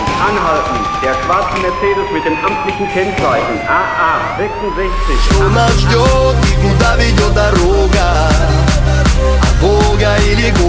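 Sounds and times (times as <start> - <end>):
police car siren wailing: 0.0 - 6.7
speech: 0.2 - 10.6.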